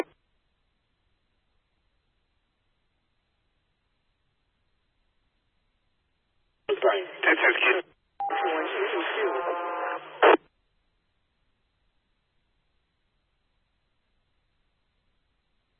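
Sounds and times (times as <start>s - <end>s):
garbled overlapping voices from two radio stations transmitting at once: 6.7s - 10.4s
tinny radio transmission bursts: 6.7s - 10.4s.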